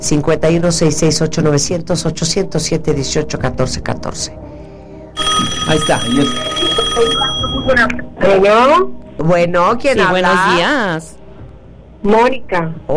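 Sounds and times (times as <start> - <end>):
speech: 0.0 - 4.5, 5.7 - 11.2, 12.0 - 12.9
telephone ringing for an incoming call: 5.2 - 8.1.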